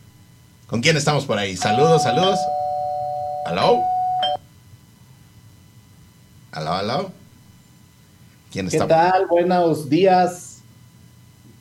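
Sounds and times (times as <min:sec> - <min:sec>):
speech: 0:00.7 - 0:02.7, 0:03.4 - 0:03.9, 0:06.5 - 0:07.2, 0:08.5 - 0:10.5
electronic doorbell chime: 0:01.6 - 0:04.4.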